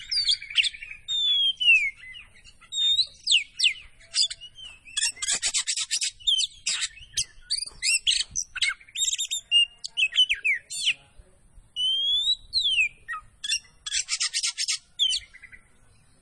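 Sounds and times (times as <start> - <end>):
Oriental magpie-robin singing vigorously: 0.0 - 16.2.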